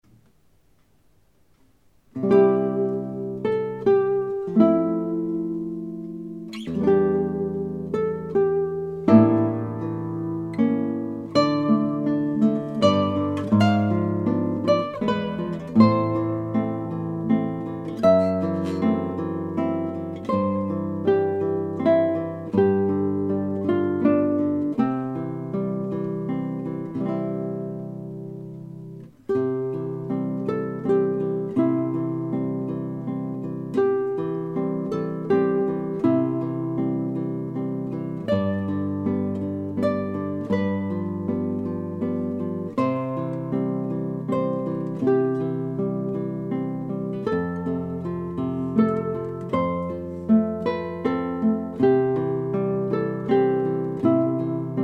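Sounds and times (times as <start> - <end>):
guitar playing a Christmas carol: 2.1 - 54.8.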